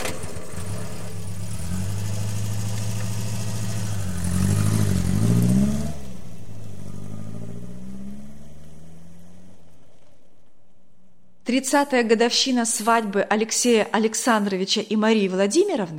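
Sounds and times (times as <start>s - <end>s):
car engine starting, idling and revving: 0.0s - 11.2s
speech: 11.5s - 15.9s.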